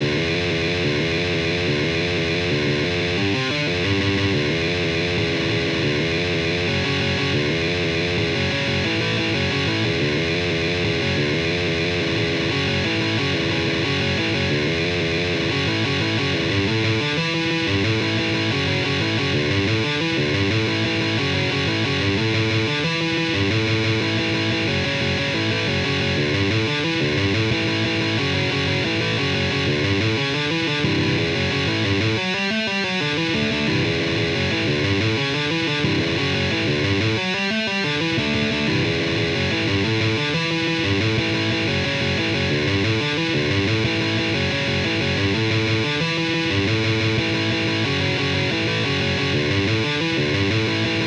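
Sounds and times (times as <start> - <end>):
punk guitar: 0.0 - 51.0.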